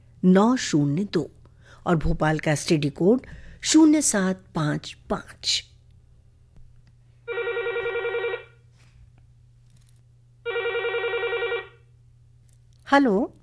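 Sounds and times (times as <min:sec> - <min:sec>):
low steady hum: 0:00.0 - 0:13.4
speech: 0:00.2 - 0:05.7, 0:12.9 - 0:13.4
telephone ringing with a rapid warbling trill: 0:07.3 - 0:08.6, 0:10.4 - 0:11.8.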